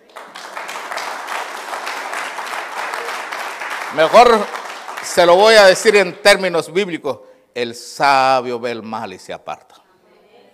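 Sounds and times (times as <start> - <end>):
audience clapping hands: 0.0 - 6.2
speech: 3.9 - 9.8.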